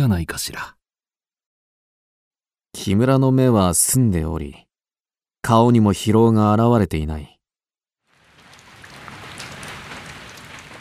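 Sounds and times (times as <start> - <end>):
speech: 0.0 - 0.8, 2.8 - 4.7, 5.4 - 7.3
heavy wind-driven rain pouring down outside: 8.1 - 10.7.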